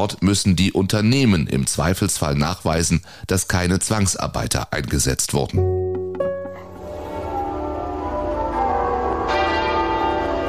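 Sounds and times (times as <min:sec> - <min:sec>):
speech: 0:00.0 - 0:05.9
church bells ringing: 0:06.3 - 0:10.4.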